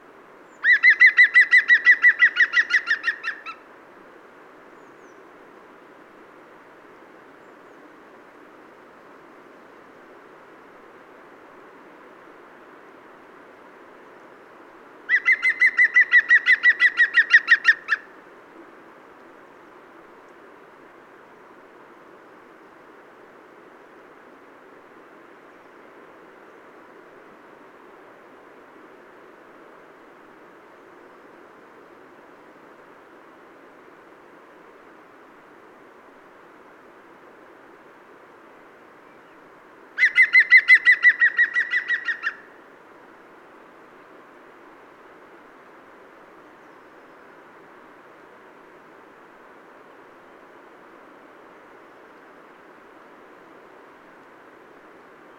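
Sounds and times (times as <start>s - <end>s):
green woodpecker calling: 0.6s - 3.6s, 15.1s - 18.0s, 40.0s - 42.5s.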